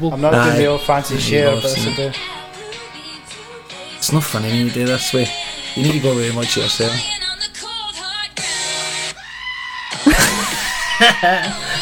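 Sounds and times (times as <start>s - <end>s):
speech: 0.0s - 2.4s, 4.0s - 7.1s, 11.0s - 11.8s
person imitating a screaming goat: 9.2s - 10.1s
laughter: 9.9s - 11.8s.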